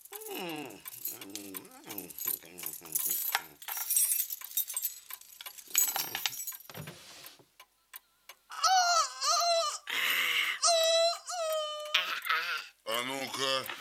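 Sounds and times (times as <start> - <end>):
wavering whining vocal tones: 0.0 - 3.6, 8.5 - 13.6
keys jingling in a pocket: 0.0 - 6.8.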